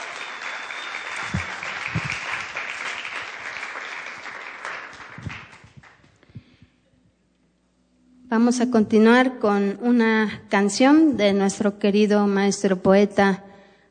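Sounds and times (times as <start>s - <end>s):
audience clapping warmly: 0.0s - 6.1s
speech: 8.4s - 13.5s.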